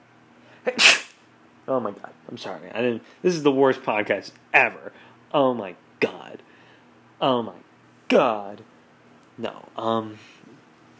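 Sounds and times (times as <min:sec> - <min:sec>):
speech: 0:00.6 - 0:01.0, 0:01.7 - 0:06.5, 0:07.2 - 0:08.7, 0:09.4 - 0:10.4
sneeze: 0:00.7 - 0:01.2.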